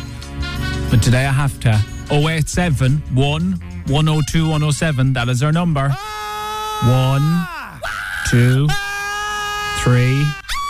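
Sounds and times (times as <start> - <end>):
speech: 0.9 - 6.2, 6.8 - 8.8, 9.8 - 10.4
person screaming: 5.9 - 10.6.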